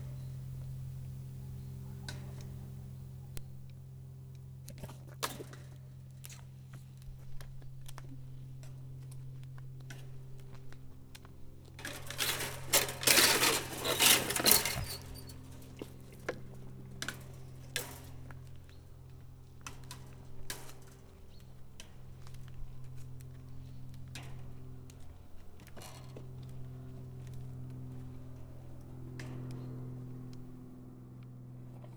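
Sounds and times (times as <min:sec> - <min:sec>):
propeller plane flying: 0:00.0 - 0:31.9
red deer stag butting a fence: 0:11.8 - 0:16.3.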